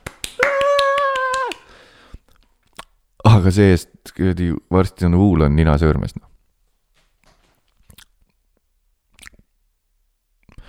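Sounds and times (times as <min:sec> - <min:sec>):
sharp hand claps in a steady rhythm: 0:00.0 - 0:01.7
speech: 0:03.2 - 0:06.3.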